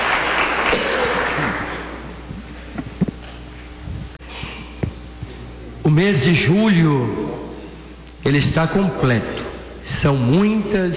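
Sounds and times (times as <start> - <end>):
audience applause: 0.0 - 2.2
speech: 5.9 - 7.2, 8.2 - 10.9.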